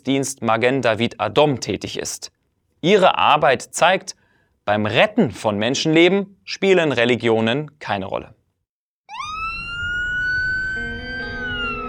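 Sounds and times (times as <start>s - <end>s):
speech: 0.0s - 8.4s
wailing ambulance siren: 9.1s - 11.8s.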